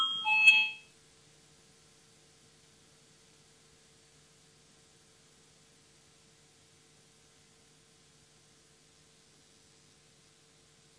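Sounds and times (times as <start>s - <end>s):
electronic voting bell tone in a parliament chamber: 0.0s - 0.9s.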